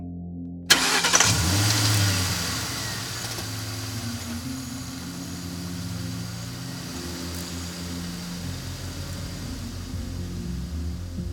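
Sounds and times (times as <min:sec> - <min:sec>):
car engine cranking, starting and running: 0:00.7 - 0:11.3.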